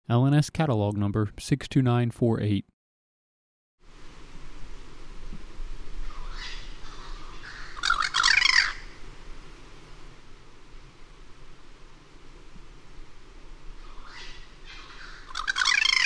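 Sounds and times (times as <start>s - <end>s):
speech: 0.1s - 2.7s
steady hiss: 3.8s - 16.0s
Cuban Crow harsh rapid jumbled calls: 6.0s - 9.0s, 13.9s - 16.0s.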